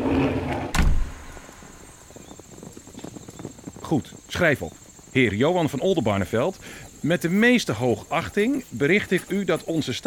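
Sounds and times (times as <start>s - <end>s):
ship's hatch shutting with a heavy thud: 0.7s - 1.7s
speech: 3.9s - 10.0s.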